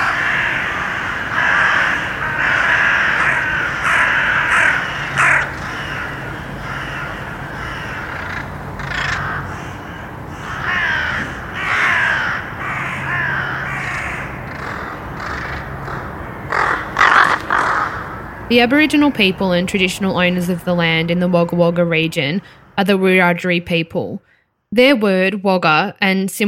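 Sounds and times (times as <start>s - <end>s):
many crows cawing: 0.0s - 18.5s
speech: 18.5s - 26.4s.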